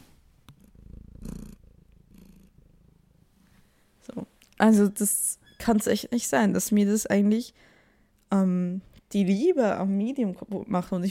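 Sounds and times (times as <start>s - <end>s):
male cat purring: 0.0s - 3.9s
speech: 4.1s - 7.7s, 8.3s - 11.0s.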